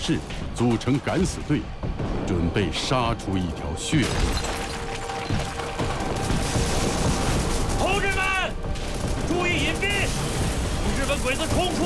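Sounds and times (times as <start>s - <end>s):
speech: 0.0s - 4.6s, 11.2s - 11.8s
machine gun fire: 5.4s - 11.8s.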